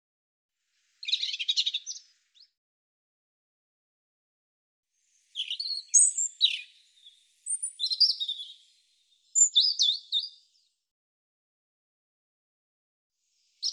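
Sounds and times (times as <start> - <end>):
European robin singing: 1.0 - 2.5, 5.2 - 10.7, 13.6 - 13.7.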